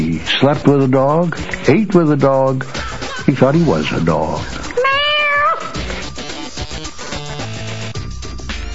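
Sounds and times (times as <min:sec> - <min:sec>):
speech: 0:00.2 - 0:04.6
cat with folded-down ears meowing: 0:04.7 - 0:05.8.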